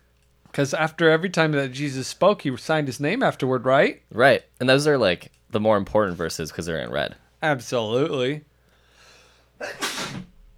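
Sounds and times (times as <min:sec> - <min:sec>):
speech: 0:00.6 - 0:08.5, 0:09.6 - 0:10.1
sneeze: 0:09.6 - 0:10.4.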